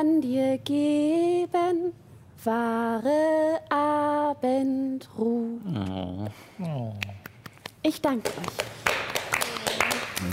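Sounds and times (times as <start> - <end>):
speech: 0.0 - 7.2, 7.8 - 9.2
audience clapping after a song: 7.0 - 10.3.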